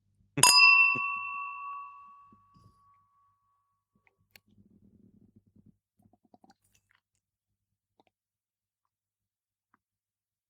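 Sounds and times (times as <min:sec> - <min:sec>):
whisky glass clinking and ringing with a bell-like tone: 0:00.4 - 0:03.0.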